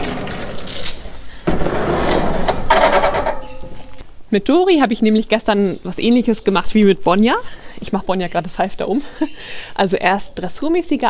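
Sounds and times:
door opened or closed with a scraping rattle: 0.0s - 4.0s
speech: 4.3s - 11.0s.

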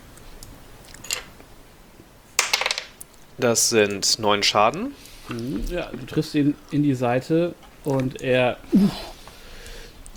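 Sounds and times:
die thrown and tumbling on a table: 2.4s - 3.0s
speech: 3.4s - 9.1s.

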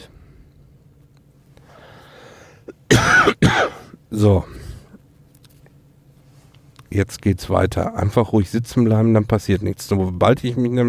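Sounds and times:
harsh coughing: 2.5s - 4.8s
speech: 3.2s - 4.6s, 6.9s - 10.8s.

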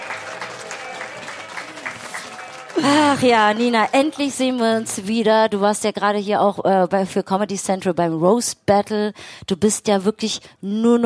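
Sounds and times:
crowd applauding: 0.0s - 4.8s
speech: 2.8s - 11.0s.

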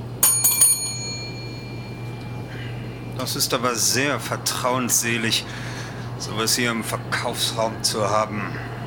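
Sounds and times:
small hand bell ringing: 0.2s - 2.4s
speech: 3.2s - 8.7s.

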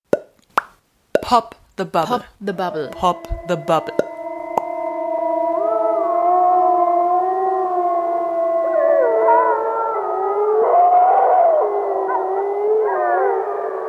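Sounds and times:
speech: 1.3s - 4.1s
chorus of wolves howling: 2.7s - 13.8s.

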